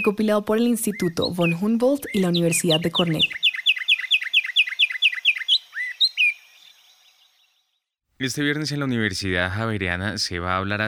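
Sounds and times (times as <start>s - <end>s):
speech: 0.0s - 3.4s, 8.2s - 10.8s
pinzón con rostro Colombian finch singing a trill: 0.0s - 7.6s.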